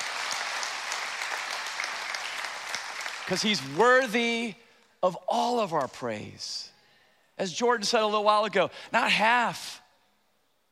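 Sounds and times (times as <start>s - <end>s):
large crowd clapping in praise of God: 0.0s - 4.5s
speech: 3.3s - 6.7s, 7.4s - 9.8s.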